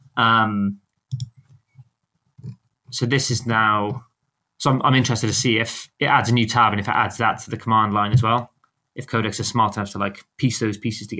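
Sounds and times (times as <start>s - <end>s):
speech: 0.2s - 0.8s, 2.9s - 11.1s
typing on a computer keyboard: 1.0s - 1.6s.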